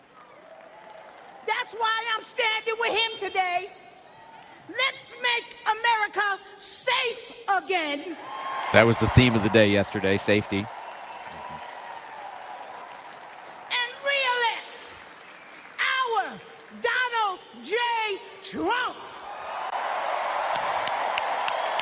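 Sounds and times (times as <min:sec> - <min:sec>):
large crowd cheering at a rally: 0:00.0 - 0:02.1, 0:08.1 - 0:21.7
speech: 0:01.7 - 0:03.8, 0:04.7 - 0:10.8
loud whoops: 0:08.2 - 0:10.0, 0:10.7 - 0:13.0, 0:19.3 - 0:21.7.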